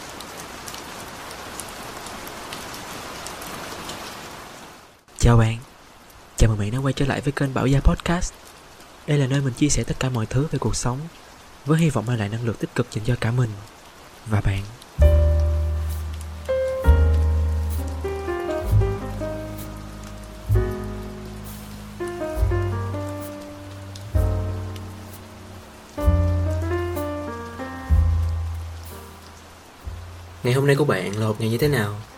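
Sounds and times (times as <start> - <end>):
heavy rain falling outside: 0.0 - 32.1
speech: 5.2 - 5.7, 6.4 - 15.1, 30.5 - 32.1
slow gentle instrumental melody with soft chords: 15.0 - 32.1.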